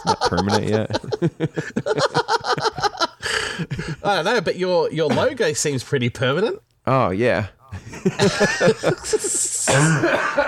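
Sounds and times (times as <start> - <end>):
speech: 0.0 - 2.8, 3.6 - 10.4
laughter: 0.0 - 4.0, 7.7 - 10.4
person coughing: 9.3 - 10.4.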